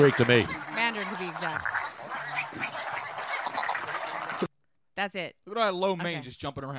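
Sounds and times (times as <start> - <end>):
speech: 0.0 - 1.0, 5.0 - 6.7
dense chorus of frogs croaking: 0.0 - 4.5.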